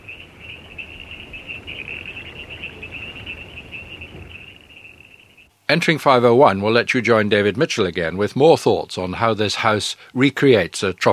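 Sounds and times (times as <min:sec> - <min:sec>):
tree frogs singing in a dense chorus of high shrill trilling: 0:00.0 - 0:05.5
soft low rumble of ambience: 0:00.0 - 0:09.7
speech: 0:05.7 - 0:11.1.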